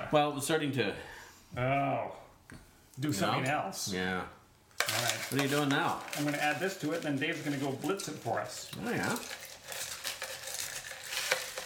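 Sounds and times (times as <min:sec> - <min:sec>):
speech: 0:00.1 - 0:09.4
crushed ice being put into a mixing glass: 0:04.8 - 0:11.6.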